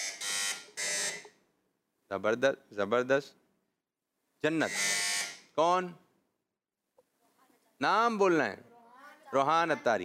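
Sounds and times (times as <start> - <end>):
quiz buzzer button buzzing: 0.0 - 1.4, 4.6 - 5.5
speech: 2.1 - 3.4, 4.4 - 4.8, 5.6 - 6.0, 7.8 - 8.7, 9.3 - 10.0.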